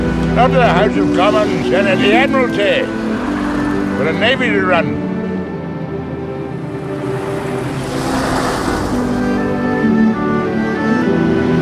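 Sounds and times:
car engine droning while driven across a bridge at night: 0.0s - 10.7s
speech: 0.4s - 3.0s, 4.0s - 5.0s
faint rushing wash of wind or water: 6.1s - 10.3s.

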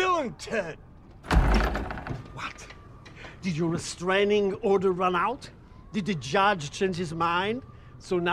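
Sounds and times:
speech: 0.2s - 0.9s, 2.4s - 2.8s, 3.4s - 8.3s
house door shutting with a heavy thunk: 1.2s - 2.4s
rattling knocks: 1.2s - 2.4s.

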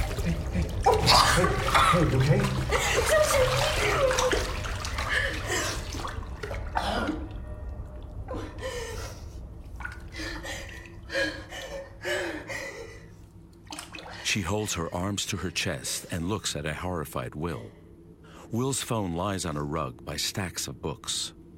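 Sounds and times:
person surging up out of dirty water in a white enamel bathtub: 0.0s - 8.9s, 9.7s - 11.8s, 13.5s - 14.4s
speech: 1.4s - 4.0s, 14.3s - 17.8s, 18.5s - 21.4s.

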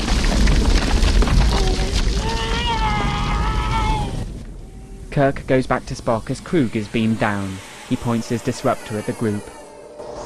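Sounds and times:
small rocks tumbling down a cliff face beside a clearing: 0.0s - 4.6s
speech: 5.2s - 9.6s.

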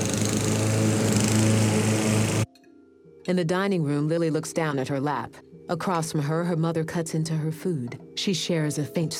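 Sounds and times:
stand-on lawnmower engines running: 0.0s - 2.5s
speech: 3.3s - 9.1s.

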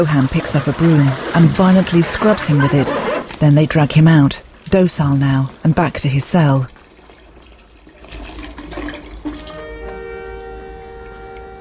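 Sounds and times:
water gushing into a sink basin: 0.0s - 2.9s, 5.2s - 10.4s
speech: 0.0s - 6.8s.

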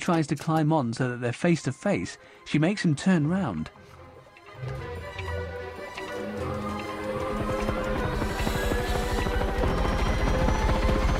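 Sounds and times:
speech: 0.0s - 3.9s
dense steady mechanical whir: 5.3s - 11.1s
two huge overhead rotors of a hover vehicle chopping: 5.5s - 11.1s.

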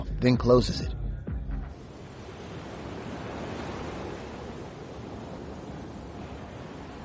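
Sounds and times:
speech: 0.2s - 1.0s
waves crashing on a beach: 1.7s - 7.0s.

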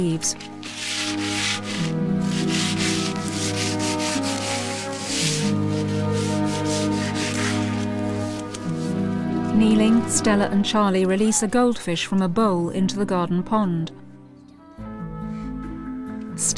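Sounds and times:
speech: 0.0s - 0.9s, 9.6s - 14.0s
sandpaper rubbing down a wooden window frame: 0.2s - 8.9s.

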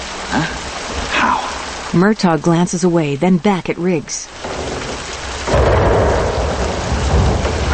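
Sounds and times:
heavy rain from a thunderstorm: 0.0s - 7.7s
speech: 0.3s - 0.6s, 2.0s - 4.4s
thunder rumbling from a thunderstorm: 4.3s - 7.7s.

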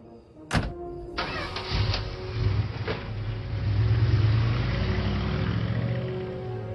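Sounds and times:
sharp thunk: 0.5s - 0.8s
red truck engine turning over and rumbling: 0.5s - 6.7s.

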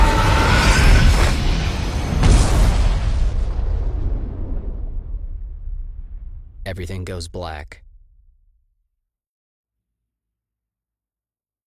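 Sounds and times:
explosive rumble of cosmic bodies bursting apart: 0.0s - 8.6s
speech: 6.7s - 7.9s.

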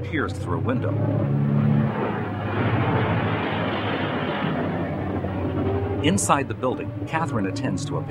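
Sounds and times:
speech: 0.0s - 1.7s, 6.0s - 8.0s
ambulances driving past a hospital: 0.0s - 8.0s
brief low tonal hum: 0.0s - 8.0s.

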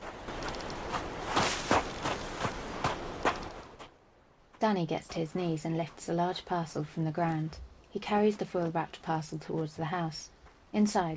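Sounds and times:
footsteps crunching in snow hurrying down a snowy slope: 0.0s - 3.9s
speech: 4.7s - 11.1s.

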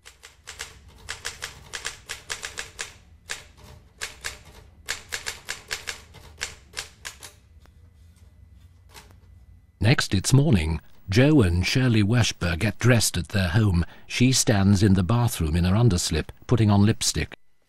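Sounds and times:
typewriter clacking keystrokes: 0.0s - 7.3s
low room hum: 0.0s - 17.6s
speech: 9.9s - 17.4s.

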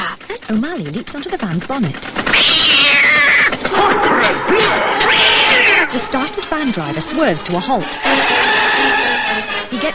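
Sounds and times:
speech: 0.5s - 9.9s
cat yowling: 2.3s - 6.3s.

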